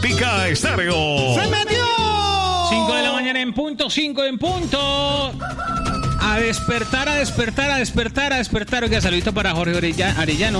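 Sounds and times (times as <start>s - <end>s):
speech: 0.0s - 10.5s
rooster crowing at five in the morning: 5.3s - 7.4s.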